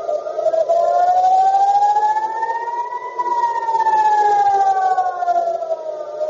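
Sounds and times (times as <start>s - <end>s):
air raid warning siren wailing in central Israel during a missile attack: 0.0s - 6.2s.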